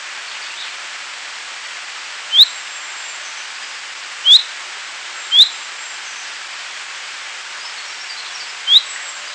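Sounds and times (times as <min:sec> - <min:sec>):
constant hiss: 0:00.0 - 0:09.3
common chaffinch calling with brief rising whistles: 0:05.3 - 0:05.6, 0:08.1 - 0:09.0.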